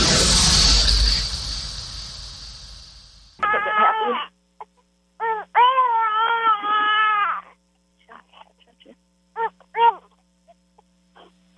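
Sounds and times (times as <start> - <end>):
burst of loud rushing noise: 0.0 - 3.4
baby wailing with gasping pauses: 3.4 - 4.3, 5.2 - 8.2, 9.4 - 10.2.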